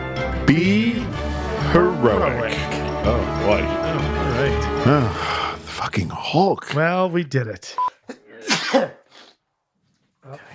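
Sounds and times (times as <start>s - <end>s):
speech: 0.2s - 9.0s, 10.2s - 10.5s
person sneezing: 8.2s - 9.4s.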